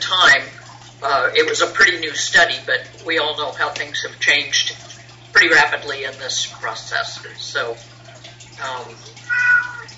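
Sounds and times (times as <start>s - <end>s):
speech: 1.2s - 7.9s, 8.6s - 9.2s
whiny cat meowing: 9.2s - 9.9s.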